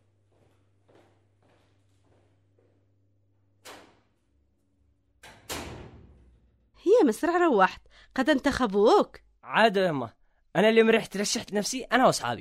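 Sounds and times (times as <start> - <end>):
door being opened: 3.6 - 4.2, 5.2 - 6.4
speech: 7.0 - 12.3.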